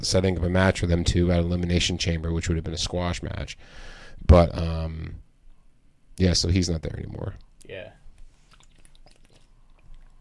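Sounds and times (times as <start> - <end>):
speech: 0.0 - 5.2, 6.2 - 8.0
person sipping a drink: 8.4 - 10.2
swallowing: 8.5 - 10.2.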